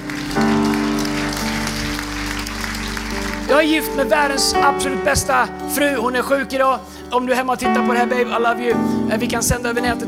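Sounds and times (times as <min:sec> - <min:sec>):
crowd applauding: 0:00.0 - 0:04.1
sustained musical tone: 0:00.0 - 0:10.0
speech: 0:03.5 - 0:10.0.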